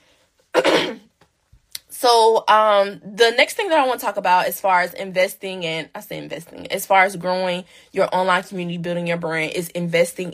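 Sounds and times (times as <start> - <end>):
raspy throat clearing: 0.6 - 1.0
rough cough: 0.6 - 1.1
speech: 2.0 - 10.3
brief breath: 7.7 - 7.9.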